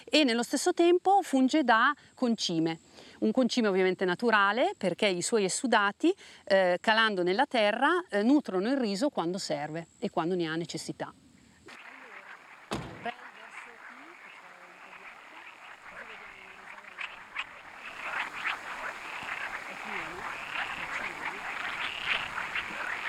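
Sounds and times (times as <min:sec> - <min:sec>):
speech: 0:00.1 - 0:11.8
chorus of frogs croaking in a rice field: 0:11.6 - 0:23.0
sharp knock: 0:12.7 - 0:13.1.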